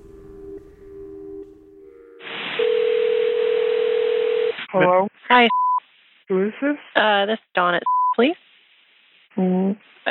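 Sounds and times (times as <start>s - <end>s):
hiss of telephone line noise: 0.0s - 10.0s
telephone dial tone on a call line: 2.6s - 4.6s
speech: 4.8s - 5.6s, 6.3s - 8.4s, 9.4s - 10.0s.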